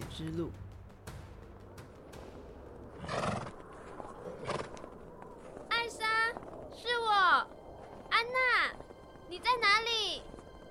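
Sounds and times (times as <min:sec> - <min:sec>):
speech: 0:00.2 - 0:00.7
horse hooves as it is ridden: 0:00.9 - 0:10.6
ridden horse neighing as it sets off: 0:03.0 - 0:03.6.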